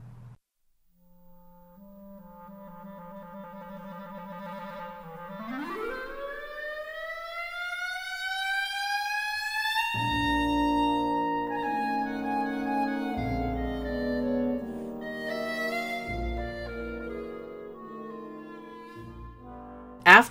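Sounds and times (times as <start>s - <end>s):
clarinet trilling on a low note and gliding up: 1.1s - 20.0s
full band playing: 2.4s - 7.5s, 9.8s - 20.0s.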